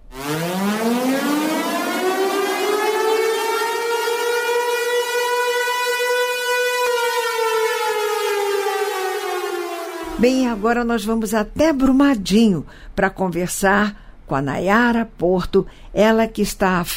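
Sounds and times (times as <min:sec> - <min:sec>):
civil defense warning siren wailing: 0:00.0 - 0:10.9
speech: 0:10.2 - 0:16.9.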